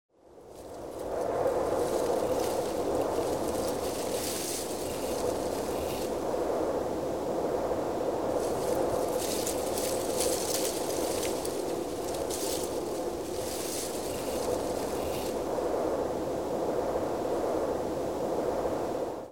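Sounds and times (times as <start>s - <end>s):
wind blowing leaves away in a forest: 0.1s - 19.3s.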